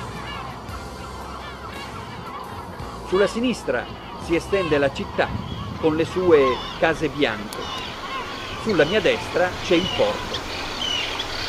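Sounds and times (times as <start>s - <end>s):
dense flock of seagulls calling: 0.0s - 11.4s
speech: 3.1s - 7.9s, 8.6s - 10.4s.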